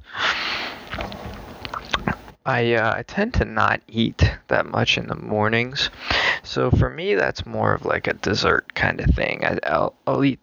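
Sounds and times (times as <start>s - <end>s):
steady low hiss: 0.0s - 10.4s
chewing crunchy cereal with cold milk: 0.4s - 2.3s
speech: 2.4s - 10.4s.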